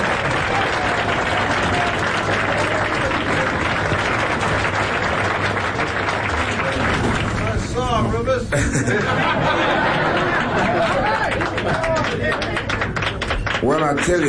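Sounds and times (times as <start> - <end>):
cheers: 0.0 - 7.5, 9.6 - 13.2
large crowd applauding a performer: 0.0 - 14.2
laughter: 8.4 - 12.8
speech: 13.9 - 14.2.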